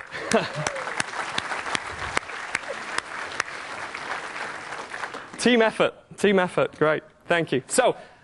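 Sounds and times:
audience applause: 0:00.0 - 0:05.5
speech: 0:00.3 - 0:00.9, 0:05.4 - 0:08.1.

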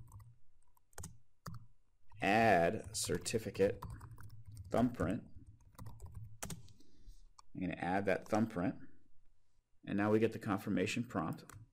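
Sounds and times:
faint typing on a computer keyboard: 0:00.0 - 0:06.7, 0:11.3 - 0:11.7
speech: 0:02.7 - 0:04.0, 0:04.7 - 0:05.3, 0:07.6 - 0:08.8, 0:09.9 - 0:11.6.

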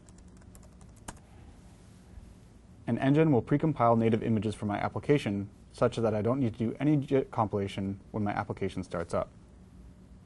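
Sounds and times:
faint keystrokes on a computer keyboard typing a command: 0:00.0 - 0:01.2
speech: 0:02.9 - 0:09.4.

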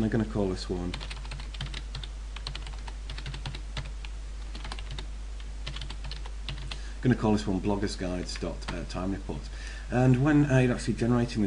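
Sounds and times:
speech: 0:00.0 - 0:01.2, 0:07.0 - 0:11.4
typing on a computer keyboard with Swedish layout: 0:00.9 - 0:03.9, 0:04.5 - 0:06.8.

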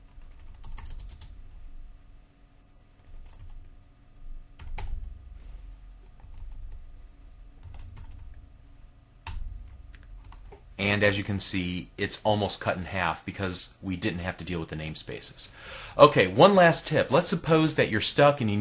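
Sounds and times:
computer keyboard typing code: 0:00.0 - 0:01.6, 0:03.0 - 0:03.7, 0:04.6 - 0:05.1, 0:06.0 - 0:06.8, 0:07.6 - 0:08.4, 0:09.2 - 0:10.6
low steady hum: 0:00.0 - 0:18.5
speech: 0:10.8 - 0:18.5.

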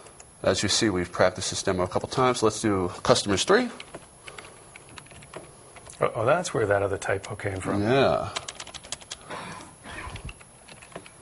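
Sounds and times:
speech: 0:00.4 - 0:04.0, 0:06.0 - 0:08.4
typing on a computer keyboard: 0:03.8 - 0:05.9, 0:08.3 - 0:09.2.

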